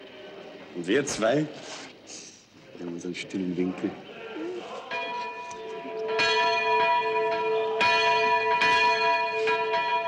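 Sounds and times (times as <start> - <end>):
speech: 0.7 - 2.2, 2.8 - 4.1
two church bells ringing in a peal: 4.9 - 10.0.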